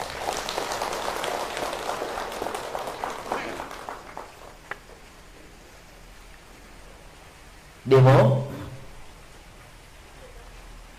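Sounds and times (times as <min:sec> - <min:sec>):
audience applause: 0:00.0 - 0:05.0
speech: 0:07.9 - 0:08.5.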